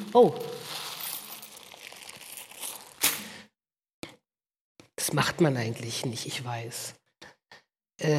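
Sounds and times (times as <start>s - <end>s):
speech: 0.1s - 0.7s, 5.1s - 7.0s, 8.0s - 8.1s
rustling and crinkling inside a cloth church collection bag: 0.4s - 3.1s.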